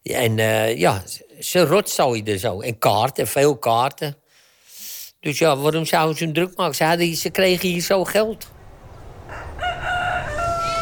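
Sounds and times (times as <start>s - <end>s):
speech: 0.0s - 4.2s, 5.2s - 8.6s
rooster crowing at a children's petting farm: 8.7s - 10.8s.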